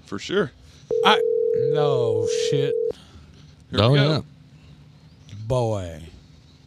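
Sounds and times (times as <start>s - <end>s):
speech: 0.1s - 3.1s, 3.7s - 4.3s, 5.5s - 6.1s
telephone dial tone: 0.9s - 2.9s.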